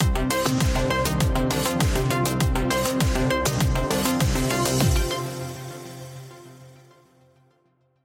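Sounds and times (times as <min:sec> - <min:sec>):
synthesizer groove ident: 0:00.0 - 0:07.0.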